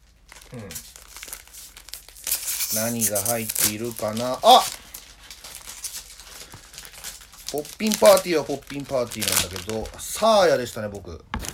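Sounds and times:
small wrapped card packet being torn open: 0:00.0 - 0:10.8
plastic wrapper of a small card packet crinkling: 0:00.0 - 0:11.5
speech: 0:00.5 - 0:00.9, 0:02.7 - 0:04.8, 0:07.5 - 0:11.3.

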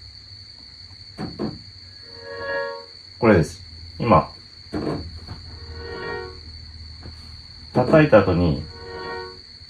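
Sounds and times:
reverse reverb piano swells: 0:02.0 - 0:03.0, 0:05.5 - 0:06.8, 0:08.4 - 0:09.5
speech: 0:03.2 - 0:04.3, 0:07.8 - 0:08.7.

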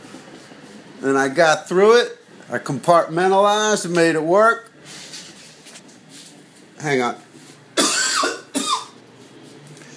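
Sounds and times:
speech: 0:01.0 - 0:04.7, 0:06.8 - 0:07.2
harsh rasping cough: 0:07.8 - 0:09.0.

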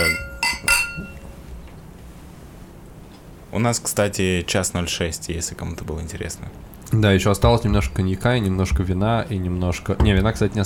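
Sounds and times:
glasses clinking together in a toast: 0:00.0 - 0:01.3
speech: 0:03.6 - 0:10.6.

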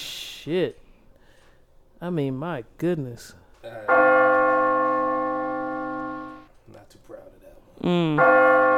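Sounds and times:
speech: 0:00.4 - 0:00.8, 0:02.0 - 0:04.1, 0:07.8 - 0:08.7
bell ringing: 0:03.9 - 0:06.5.

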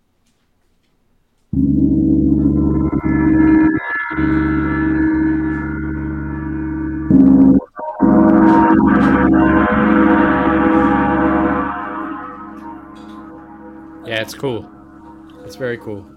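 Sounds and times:
large gong struck with a heavy mallet: 0:01.6 - 0:16.1
speech: 0:14.2 - 0:14.8, 0:15.5 - 0:16.1.

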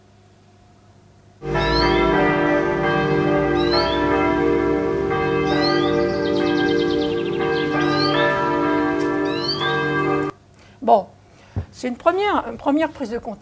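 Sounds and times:
church bells ringing near a church: 0:01.4 - 0:10.4
birds singing including a greenfinch near a church: 0:01.5 - 0:04.4, 0:05.2 - 0:10.2
speech: 0:11.8 - 0:13.3.

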